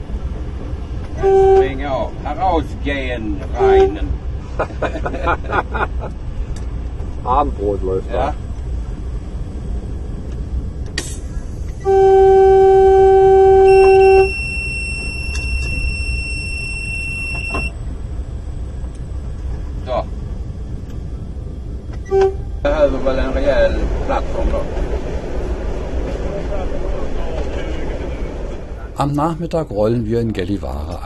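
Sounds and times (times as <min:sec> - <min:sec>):
moving train rumbling: 0:00.0 - 0:31.0
diesel locomotive signal horn blast: 0:01.2 - 0:02.2, 0:03.4 - 0:04.3, 0:11.8 - 0:17.8, 0:22.0 - 0:23.1
speech: 0:01.2 - 0:06.2, 0:07.2 - 0:08.4, 0:29.0 - 0:31.0
laughter: 0:04.4 - 0:06.2, 0:23.8 - 0:24.7.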